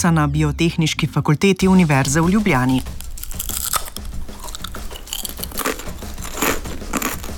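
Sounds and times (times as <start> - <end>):
speech: 0.0 - 3.0
crunching crispy potato chips: 2.4 - 7.3
chewing potato chips: 2.9 - 7.3.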